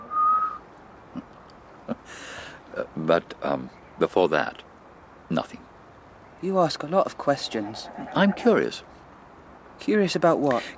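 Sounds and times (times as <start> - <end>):
shrill whistle through the teeth: 0.0 - 0.6
speech: 2.1 - 4.7, 5.3 - 5.7, 6.4 - 9.0, 9.8 - 10.7.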